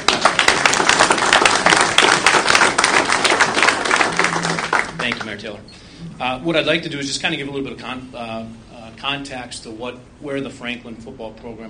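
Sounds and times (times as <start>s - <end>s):
audience applauding: 0.0s - 5.4s
speech: 5.1s - 11.6s.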